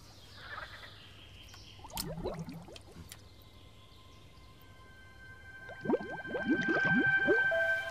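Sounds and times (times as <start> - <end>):
water bubbling and gurgling where a water sample is being taken: 1.8 - 3.3, 5.5 - 7.8.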